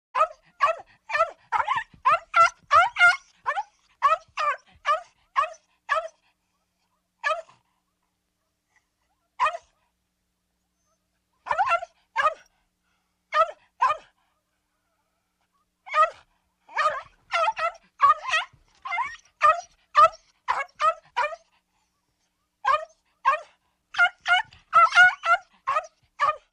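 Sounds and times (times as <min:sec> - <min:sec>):
small dog yelping and barking: 0:00.2 - 0:06.2, 0:07.2 - 0:07.7, 0:09.1 - 0:09.8, 0:10.8 - 0:12.6, 0:13.3 - 0:14.1, 0:15.9 - 0:21.6, 0:22.6 - 0:26.5.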